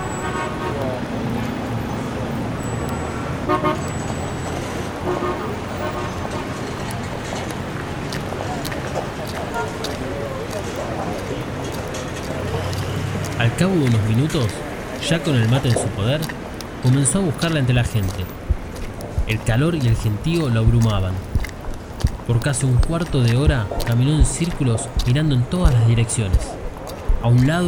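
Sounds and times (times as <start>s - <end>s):
car horns tooting in a crowded parking lot: 0.0s - 1.2s, 2.6s - 7.0s, 9.5s - 9.8s
constant roar of traffic and engines in a crowded lot: 0.0s - 27.6s
murmur of voices: 5.1s - 27.6s
speech: 13.6s - 18.4s, 19.3s - 21.3s, 22.3s - 26.6s, 27.2s - 27.6s.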